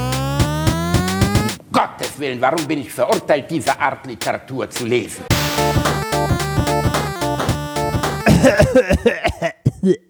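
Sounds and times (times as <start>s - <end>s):
rhythmic music: 0.0s - 3.3s, 4.2s - 8.9s
speech: 2.2s - 6.0s, 8.4s - 10.0s
person coughing in quick irregular fits: 8.2s - 10.0s.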